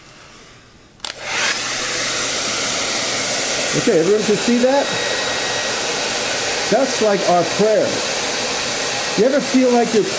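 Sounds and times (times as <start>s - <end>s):
hair dryer blowing: 0.0s - 10.1s
hair dryer switch click: 1.0s - 1.7s
speech: 3.7s - 5.2s, 6.7s - 8.1s, 9.2s - 10.1s.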